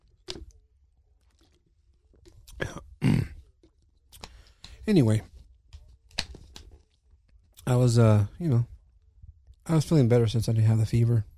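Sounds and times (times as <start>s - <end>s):
throat clearing: 2.5s - 3.4s
person coughing from a lingering cough after a fever: 2.6s - 3.4s
speech: 4.9s - 5.3s, 7.7s - 8.7s, 9.7s - 11.3s.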